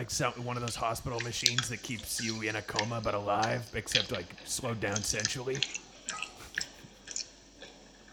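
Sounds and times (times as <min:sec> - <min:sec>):
speech: 0:00.0 - 0:05.8
person chewing food with lip smacks: 0:05.6 - 0:08.1.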